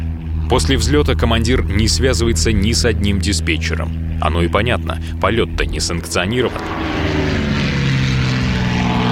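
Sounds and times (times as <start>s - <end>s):
An-2 propeller plane engine droning in flight: 0.0s - 9.1s
speech: 0.5s - 7.2s.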